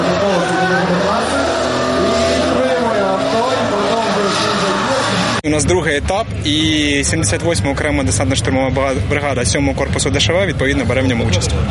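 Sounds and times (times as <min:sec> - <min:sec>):
loud drift car engines roaring and revving: 0:00.0 - 0:11.6
speech: 0:05.6 - 0:11.6.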